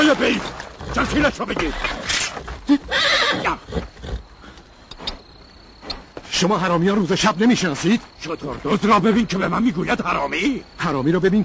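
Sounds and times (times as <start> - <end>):
speech: 0.1 - 2.1, 2.7 - 4.0, 6.4 - 11.4
horse whinnying: 0.4 - 4.3.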